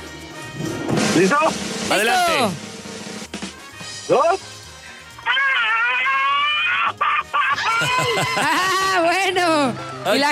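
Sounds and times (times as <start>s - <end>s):
speech: 0.6s - 2.7s, 4.1s - 4.5s, 8.0s - 10.2s
loud strained yell from one person: 1.9s - 2.6s, 5.2s - 7.0s
laughter: 5.6s - 9.0s.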